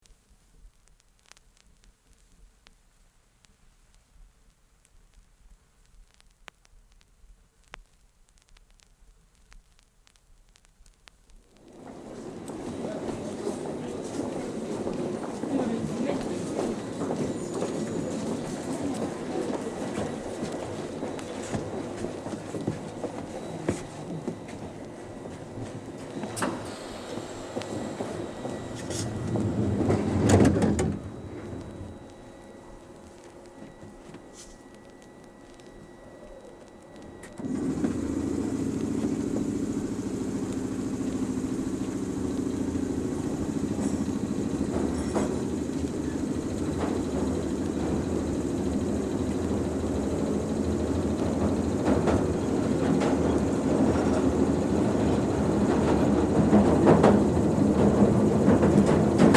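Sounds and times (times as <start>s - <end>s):
person boarding a train: 11.6s - 59.3s
train doors closing: 11.8s - 32.7s, 43.0s - 59.3s.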